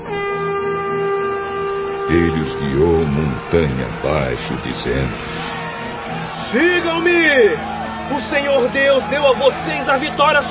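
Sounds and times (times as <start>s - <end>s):
sustained ram's horn blast with brassy drone: 0.0s - 5.9s
speech: 2.1s - 5.6s, 6.5s - 10.4s.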